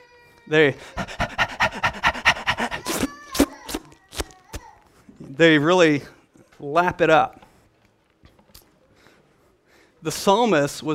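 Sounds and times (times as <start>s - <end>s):
speech: 0.5s - 1.3s, 5.4s - 7.4s, 10.0s - 10.9s
person imitating a thirsty dog panting: 0.8s - 4.3s.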